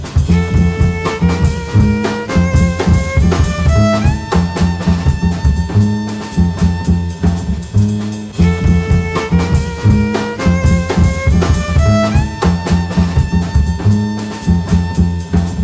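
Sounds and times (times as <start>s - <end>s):
violin trio playing: 0.3s - 15.6s.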